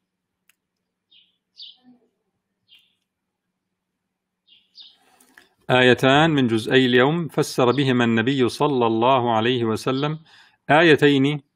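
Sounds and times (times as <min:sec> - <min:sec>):
sparrows chirping outside a window: 0:00.6 - 0:03.2, 0:04.4 - 0:08.8
speech: 0:05.7 - 0:11.5.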